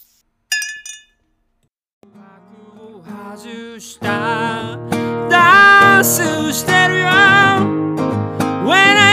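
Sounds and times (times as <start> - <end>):
glasses clinking in a milk toast: 0.5 - 1.3
speech: 3.4 - 5.4, 6.0 - 9.0.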